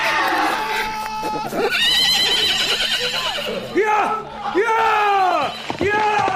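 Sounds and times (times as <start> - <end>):
laughter: 0.0 - 4.6
busy noise: 0.0 - 6.3
ridden horse whinnying: 0.2 - 6.3.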